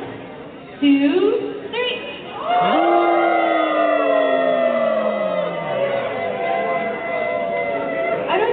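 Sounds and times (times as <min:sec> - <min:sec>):
speech: 0:00.8 - 0:02.9
concert audience howling like wolves: 0:02.4 - 0:08.4.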